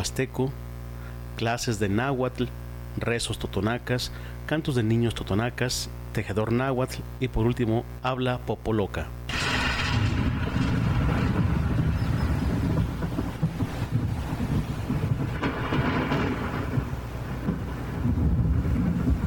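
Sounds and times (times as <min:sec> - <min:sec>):
speech: 0:00.0 - 0:00.7, 0:01.4 - 0:09.2
deep rolling staged thunder effect in a light show: 0:09.3 - 0:19.2.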